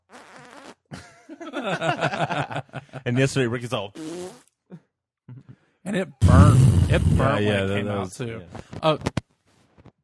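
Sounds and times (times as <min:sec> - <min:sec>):
voice imitating a small fart with raspberry bursts: 0:00.0 - 0:00.9, 0:03.9 - 0:04.5, 0:06.2 - 0:07.6
laughter: 0:01.0 - 0:03.4, 0:06.3 - 0:08.2
speech: 0:01.4 - 0:04.1, 0:05.9 - 0:09.1.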